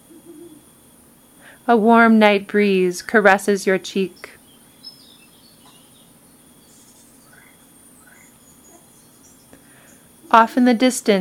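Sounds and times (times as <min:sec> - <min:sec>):
chorus of night insects humming on a warm night: 0:00.0 - 0:11.1
speech: 0:01.6 - 0:04.4, 0:10.3 - 0:11.1.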